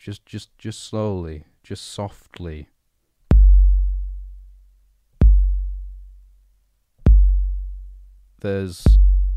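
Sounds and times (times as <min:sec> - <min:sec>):
speech: 0:00.0 - 0:02.7, 0:08.4 - 0:09.2
slow deep heartbeat: 0:03.3 - 0:04.4, 0:05.2 - 0:06.1, 0:07.1 - 0:08.0.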